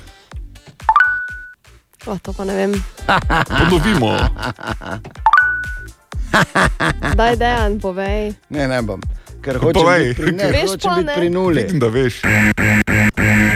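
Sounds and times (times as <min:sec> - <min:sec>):
Tinder app notification chime: 0:00.9 - 0:01.6, 0:05.2 - 0:05.9
speech: 0:02.0 - 0:05.2, 0:06.3 - 0:13.5
people laughing: 0:03.0 - 0:05.2, 0:06.2 - 0:07.4, 0:09.6 - 0:10.8.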